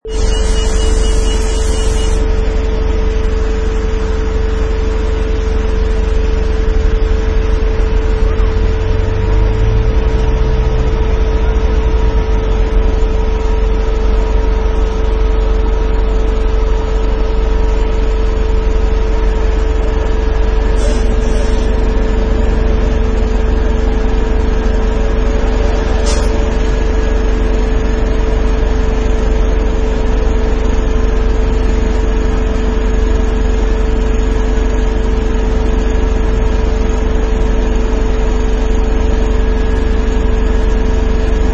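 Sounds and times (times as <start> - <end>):
truck engine idling: 0.0 - 41.5.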